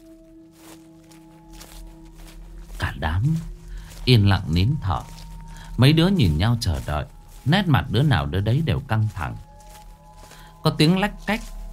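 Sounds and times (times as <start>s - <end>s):
shuffling footsteps in a yard: 0.0s - 11.7s
speech: 2.9s - 5.1s, 5.8s - 9.5s, 10.6s - 11.6s.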